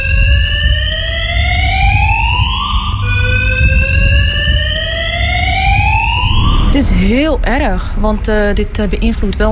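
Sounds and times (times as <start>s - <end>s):
parking garage fire alarm wailing: 0.0s - 7.4s
low rumbling background: 0.0s - 9.5s
speech: 7.1s - 9.5s.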